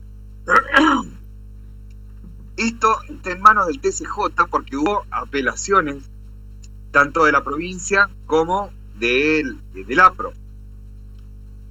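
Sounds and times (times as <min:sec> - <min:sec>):
person coughing in a bad coughing fit: 0:00.5 - 0:01.1
speech: 0:00.8 - 0:01.1, 0:02.6 - 0:06.1, 0:06.9 - 0:10.4.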